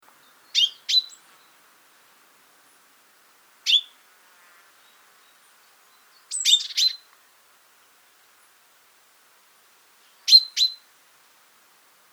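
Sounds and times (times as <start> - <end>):
common chaffinch Fringilla coelebs giving short bright clipped calls: 0.2 - 1.3, 6.2 - 7.0.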